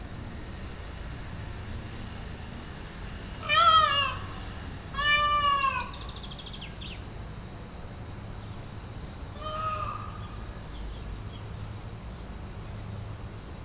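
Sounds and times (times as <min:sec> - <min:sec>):
peacock calling at Makryammos beach on Thassos: 0:03.1 - 0:06.6, 0:09.4 - 0:10.4.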